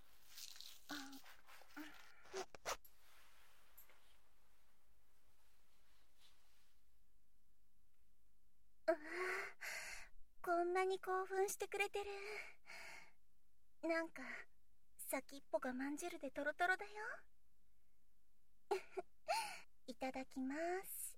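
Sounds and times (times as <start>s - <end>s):
soft breathy rustle: 0.0s - 6.8s
zipper being pulled down with the mouth: 0.2s - 2.9s
speech: 10.7s - 12.6s, 13.8s - 14.5s, 15.1s - 17.3s, 18.7s - 21.0s.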